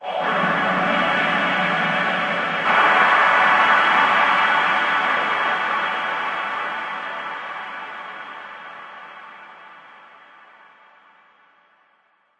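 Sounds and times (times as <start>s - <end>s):
looping ambient harmonic hit: 0.0s - 9.6s.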